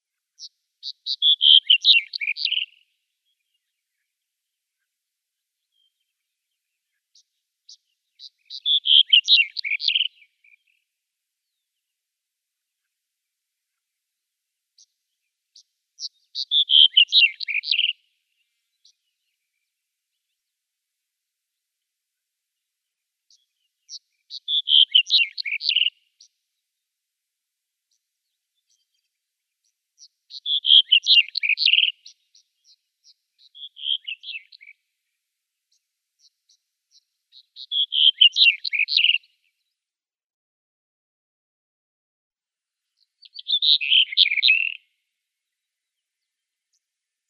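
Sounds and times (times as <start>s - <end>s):
black-headed bunting singing: 0.4s - 2.8s, 5.6s - 10.8s, 14.8s - 20.3s, 23.3s - 26.4s, 28.6s - 34.8s, 36.2s - 39.2s, 43.0s - 47.2s.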